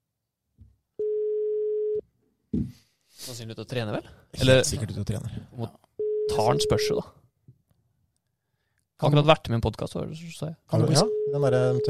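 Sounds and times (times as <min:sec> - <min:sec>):
telephone ringing tone while placing a call: 0:01.0 - 0:02.0, 0:06.0 - 0:06.9, 0:10.9 - 0:11.8
speech: 0:02.5 - 0:07.2, 0:09.0 - 0:11.8.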